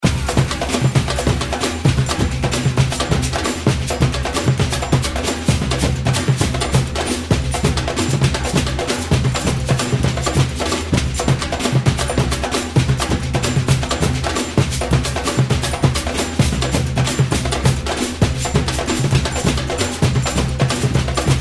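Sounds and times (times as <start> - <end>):
samba loop: 0.0 - 21.3.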